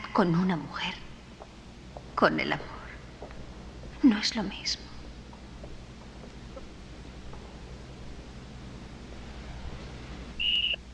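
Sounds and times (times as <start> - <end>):
quiet hum: 0.0 - 10.9
speech: 0.2 - 1.0, 2.2 - 2.7, 4.0 - 4.9
shrill whistle blast to start a game: 10.4 - 10.8.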